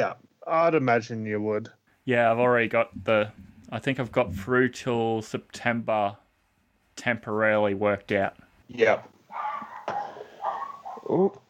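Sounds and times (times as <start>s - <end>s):
speech: 0.0s - 6.2s, 7.0s - 9.7s, 11.1s - 11.4s
dogs barking with sharp yaps and whiny bark: 9.3s - 11.2s.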